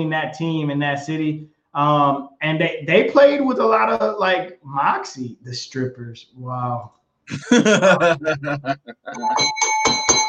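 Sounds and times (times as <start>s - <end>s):
speech: 0.0s - 10.0s
people chuckling and talking: 7.3s - 9.4s
bright bell sound effect: 7.9s - 10.2s.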